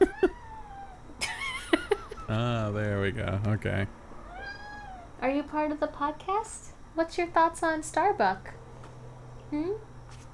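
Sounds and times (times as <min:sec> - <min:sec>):
cat yowling: 0:00.0 - 0:01.2, 0:04.2 - 0:05.2
laughter: 0:01.2 - 0:03.9
speech: 0:02.3 - 0:04.0, 0:05.2 - 0:08.6, 0:09.5 - 0:09.9.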